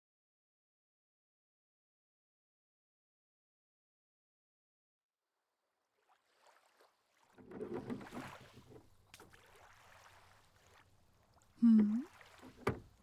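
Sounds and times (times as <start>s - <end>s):
oars splashing through water of a lake: 6.0s - 13.0s
boat wood creaking: 7.4s - 8.8s.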